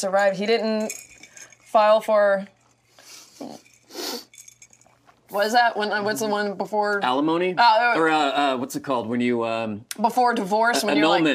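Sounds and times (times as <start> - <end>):
speech: 0.0 - 1.1, 1.7 - 2.6, 3.4 - 4.3, 5.3 - 11.3
glasses clinking in a toast: 0.6 - 1.9, 3.4 - 5.2.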